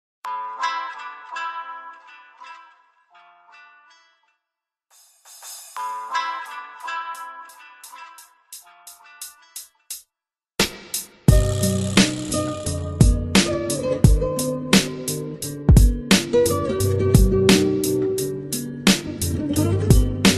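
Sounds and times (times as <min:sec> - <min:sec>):
instrumental rap hip hop beat: 0:05.0 - 0:20.3.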